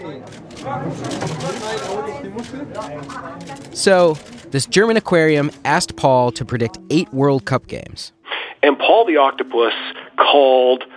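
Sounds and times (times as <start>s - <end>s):
murmur of many voices: 0.0s - 7.3s
speech: 0.1s - 10.9s
camera shutters clicking and whirring: 0.2s - 4.5s.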